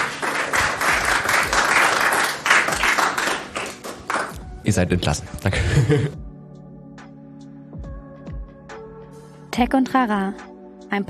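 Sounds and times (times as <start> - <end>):
crowd applauding a guest after an on-stage talk: 0.0 - 4.4
speech: 4.7 - 6.2, 9.6 - 11.0.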